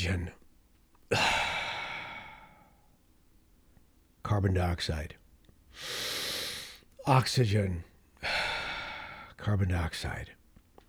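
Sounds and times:
speech: 0.0 - 0.4, 1.1 - 1.4, 4.3 - 5.2, 5.8 - 6.2, 7.1 - 8.4, 9.4 - 10.4
person taking a deep breath: 1.1 - 2.8, 5.8 - 6.8, 8.2 - 9.3.

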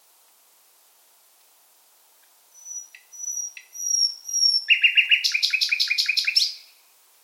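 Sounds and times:
common nightingale singing in full voice: 2.6 - 6.8.

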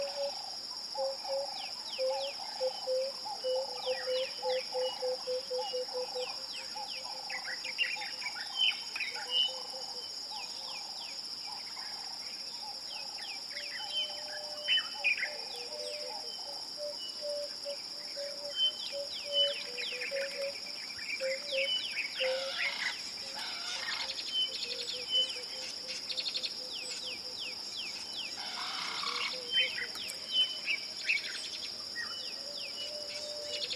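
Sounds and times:
lower pulsing cricket trill in the African savanna: 0.0 - 33.7
piercing insect drone at dusk in the African savanna: 0.0 - 33.7.

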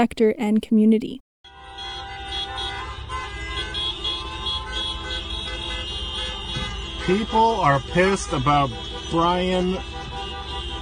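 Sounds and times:
speech: 0.0 - 1.2, 7.1 - 10.0
dense chorus of car horns honking: 1.4 - 10.8
low rumble of car engines: 1.5 - 10.8.

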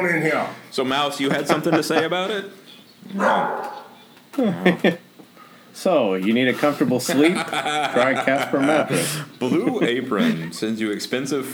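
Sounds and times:
laughter: 0.0 - 3.6, 4.3 - 5.3, 6.2 - 11.5
speech: 0.0 - 3.8, 4.4 - 5.0, 5.8 - 11.5
dog barking: 3.1 - 5.0.

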